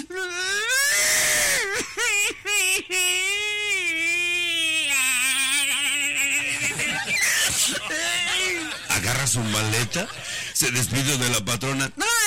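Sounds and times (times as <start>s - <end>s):
woman imitating a maid crying with wails and sobs: 0.0s - 8.9s
laughter: 1.5s - 11.1s
speech: 9.2s - 12.1s.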